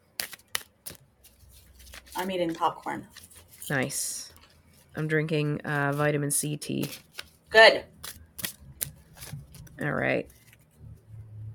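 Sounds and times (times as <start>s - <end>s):
shuffling a deck of oracle cards: 0.1s - 4.9s, 6.7s - 10.7s
speech: 2.2s - 4.2s, 5.0s - 7.9s, 9.8s - 10.4s.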